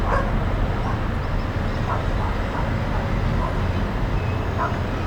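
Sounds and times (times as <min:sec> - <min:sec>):
dogs barking: 0:00.0 - 0:01.1, 0:01.8 - 0:03.8, 0:04.5 - 0:04.9.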